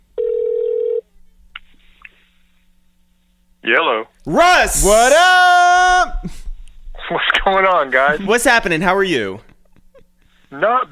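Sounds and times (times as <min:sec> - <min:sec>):
telephone dial tone: 0:00.2 - 0:01.0
speech: 0:03.7 - 0:05.4, 0:07.4 - 0:09.5, 0:10.5 - 0:10.8.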